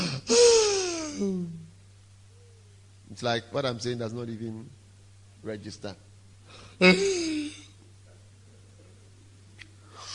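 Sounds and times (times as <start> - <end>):
person yawning with a falling groan: 0.0 - 1.7, 6.8 - 7.7
speech: 3.1 - 4.8, 5.4 - 7.6.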